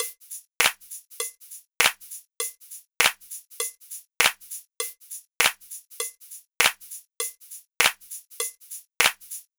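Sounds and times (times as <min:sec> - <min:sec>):
gospel percussion track: 0:00.0 - 0:09.5.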